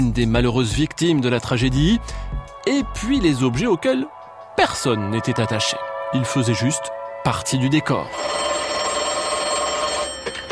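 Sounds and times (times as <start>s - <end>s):
speech: 0.0s - 8.5s
bell of an old wall-mounted loudspeaker telephone ringing: 7.9s - 10.5s.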